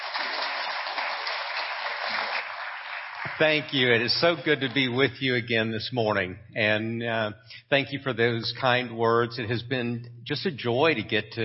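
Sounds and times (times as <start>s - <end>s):
crowd applauding: 0.0s - 5.0s
speech: 3.4s - 11.4s.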